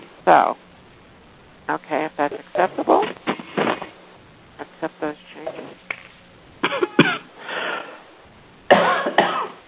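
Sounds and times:
speech: 0.3 - 0.6, 1.7 - 3.1
harsh raspy coughing: 6.6 - 7.3, 8.7 - 9.6.

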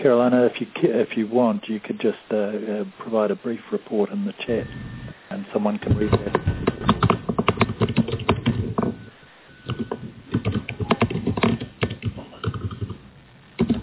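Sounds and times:
speech: 0.0 - 6.5
rapid typing on a computer keyboard: 5.9 - 9.0, 9.6 - 13.0, 13.6 - 13.8.

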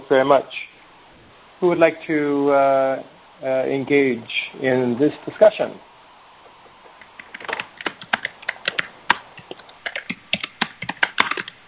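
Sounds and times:
speech: 0.1 - 0.7, 1.6 - 5.9
loud typing on a computer keyboard: 7.1 - 11.6.

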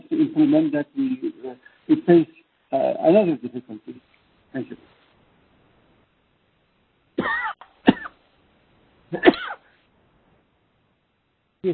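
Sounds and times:
speech: 0.2 - 4.9
person coughing harshly: 7.2 - 8.2, 9.2 - 9.7.

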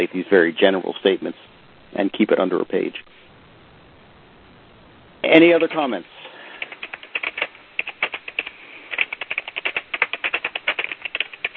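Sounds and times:
speech: 0.0 - 3.1, 5.2 - 6.2
rapid keyboard typing: 6.6 - 11.5.

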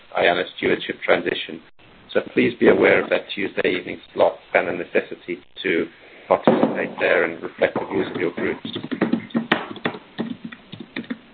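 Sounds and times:
faint hiss: 0.0 - 11.3
speech: 0.2 - 9.0
computer keyboard typing over an open mic line: 8.6 - 11.2.

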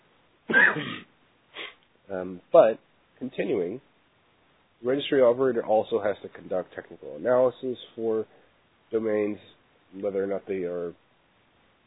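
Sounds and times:
person coughing or clearing throat: 0.5 - 1.7
speech: 2.1 - 3.9, 4.8 - 11.0.

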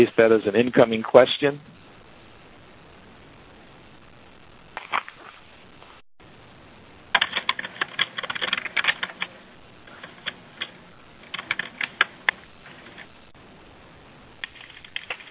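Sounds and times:
speech: 0.0 - 1.8
typing on a computer keyboard: 7.1 - 9.3, 10.0 - 13.1, 14.4 - 15.2.

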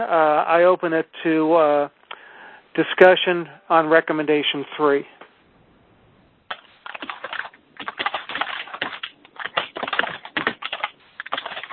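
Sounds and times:
speech: 0.0 - 2.0, 2.8 - 5.2
rapid keyboard typing over a phone line: 6.5 - 11.7.

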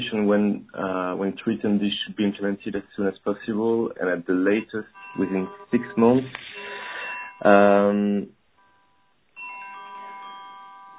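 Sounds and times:
speech: 0.0 - 6.5, 7.4 - 8.4
phone ringing in electronic tonal bursts: 4.8 - 7.5, 8.6 - 10.9.

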